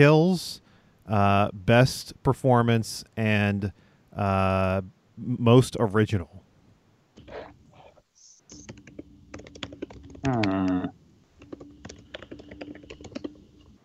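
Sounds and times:
speech: 0.0s - 6.4s, 10.2s - 11.0s
typing on a computer keyboard: 8.5s - 13.8s.

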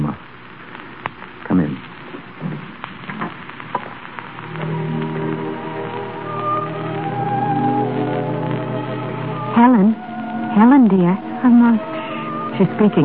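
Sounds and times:
heavy rain falling: 2.4s - 13.0s
low sustained hum: 4.5s - 13.0s
speech: 12.6s - 13.0s.

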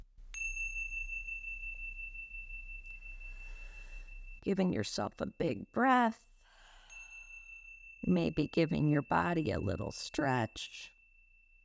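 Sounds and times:
bright meditation chime ringing at the close of a guided meditation: 0.3s - 11.6s
speech: 4.4s - 6.3s, 8.1s - 11.0s.

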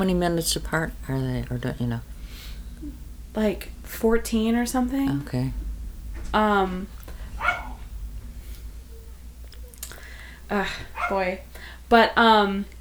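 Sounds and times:
speech: 0.0s - 2.1s, 2.8s - 5.6s, 6.3s - 7.0s, 10.5s - 12.7s
steady low hum: 0.0s - 12.7s
dog barking at a cat: 7.1s - 9.8s, 10.7s - 11.5s.

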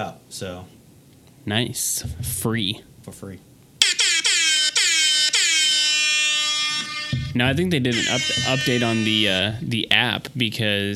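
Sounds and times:
speech: 0.0s - 0.8s, 1.4s - 3.5s, 7.3s - 10.9s
loud blaring air horn sound effect from an app: 3.8s - 9.6s.

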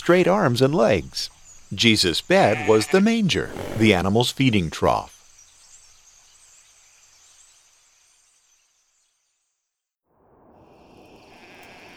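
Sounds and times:
speech: 0.0s - 5.2s
flock of sheep bleating at night in hills and fields: 2.3s - 3.9s, 11.3s - 11.9s.

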